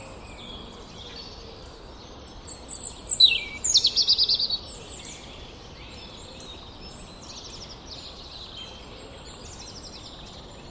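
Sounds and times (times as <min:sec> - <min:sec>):
European robin singing: 0:00.0 - 0:10.6
faint background hiss: 0:00.0 - 0:10.6.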